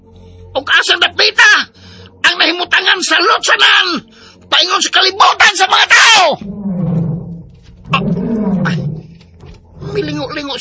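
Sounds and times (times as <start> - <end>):
speech: 0.6 - 1.8, 2.4 - 6.6, 10.0 - 10.5
tiger roaring: 6.4 - 9.2, 9.8 - 10.4.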